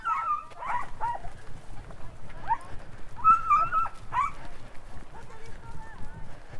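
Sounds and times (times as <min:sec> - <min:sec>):
high-pitched dog cries: 0:00.0 - 0:01.2, 0:03.2 - 0:04.3
dogs barking and yelping in mountain thickets: 0:00.0 - 0:01.5, 0:02.4 - 0:04.6
rustling and movement in mountain thickets: 0:00.0 - 0:06.5.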